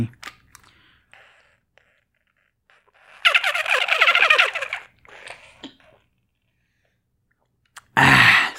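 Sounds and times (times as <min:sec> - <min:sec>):
plastic water bottle squeaking while squeezed: 0:00.6 - 0:06.5.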